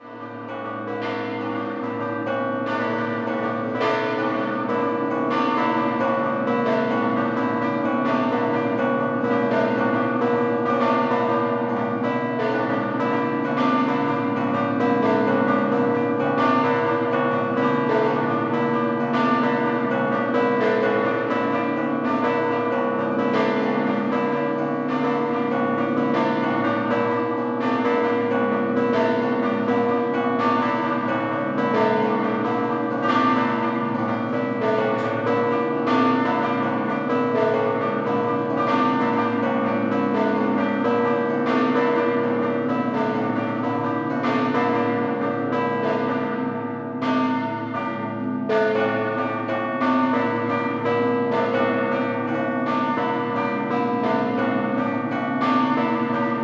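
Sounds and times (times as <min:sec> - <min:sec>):
church bells pealing in scampanottata style in Mortegliano: 0:00.0 - 0:56.4.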